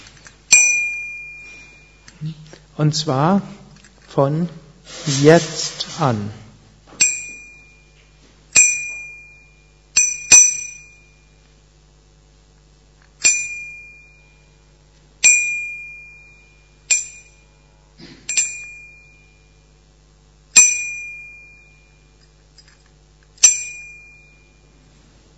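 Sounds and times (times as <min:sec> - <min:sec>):
small bright bell being struck: 0:00.5 - 0:02.2, 0:07.0 - 0:08.0, 0:08.6 - 0:11.4, 0:13.2 - 0:14.5, 0:15.2 - 0:19.6, 0:20.6 - 0:24.8
speech: 0:02.2 - 0:03.6, 0:04.2 - 0:06.4.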